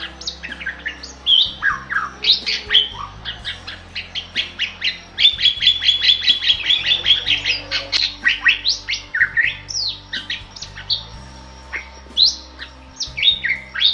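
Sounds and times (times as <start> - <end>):
Bali myna giving sharp notes, squawks and slurred whistles: 0.0 - 13.9
low background hum: 0.0 - 13.9.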